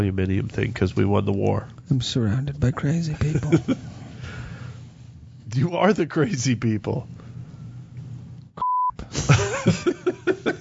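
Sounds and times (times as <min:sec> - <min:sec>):
speech: 0:00.0 - 0:03.9, 0:05.6 - 0:07.2
laughter: 0:03.2 - 0:03.8, 0:09.1 - 0:10.6
censor bleep over a word: 0:08.6 - 0:09.0.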